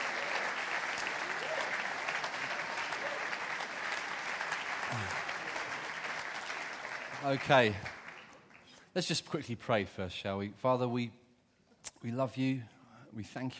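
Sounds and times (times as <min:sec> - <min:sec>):
large audience applauding: 0:00.0 - 0:08.9
speech: 0:07.2 - 0:08.0, 0:09.0 - 0:11.2, 0:11.8 - 0:13.5.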